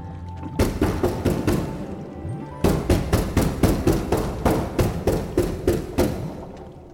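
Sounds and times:
sword pommel pounding on glass window: 0.6 - 1.8, 2.6 - 6.4.

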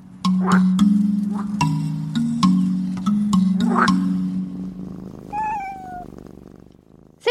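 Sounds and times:
plucked musical jingle with steady low bass line: 0.0 - 5.0
speech: 0.4 - 2.2, 3.8 - 4.0
cat meowing: 5.3 - 6.1.

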